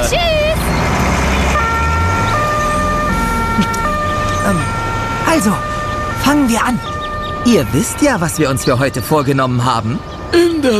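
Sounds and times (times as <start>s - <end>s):
steady rumble of road traffic: 0.0s - 10.7s
loud two-tone emergency siren: 1.4s - 9.7s
speech: 5.4s - 10.7s.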